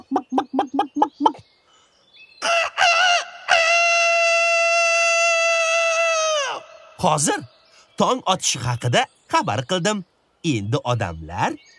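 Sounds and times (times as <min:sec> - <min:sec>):
rooster clucking: 0:00.0 - 0:01.4
rooster crowing long and drawn-out: 0:02.4 - 0:06.8
speech: 0:07.0 - 0:11.7.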